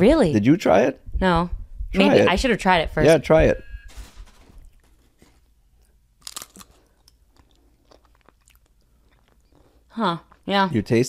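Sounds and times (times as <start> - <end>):
speech: 0.0 - 3.7, 10.0 - 11.0
crunching Pringles potato chip: 6.2 - 9.5.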